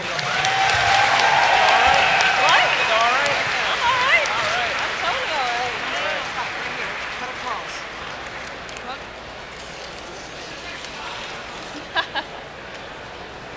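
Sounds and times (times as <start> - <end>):
large audience applauding: 0.0 - 8.7
whoops and cheering voices: 0.2 - 4.3
laughter: 11.6 - 12.6.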